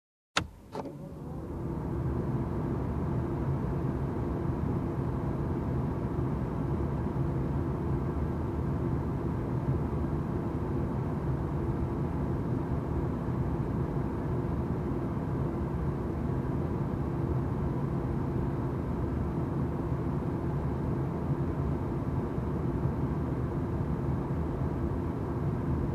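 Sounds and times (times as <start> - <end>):
car air conditioning turning on: 0.4 - 25.9.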